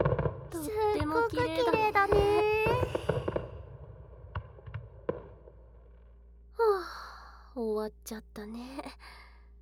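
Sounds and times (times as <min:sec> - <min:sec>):
fireworks bursting in a barrage: 0:00.0 - 0:05.6
speech: 0:00.5 - 0:02.9, 0:07.6 - 0:09.1.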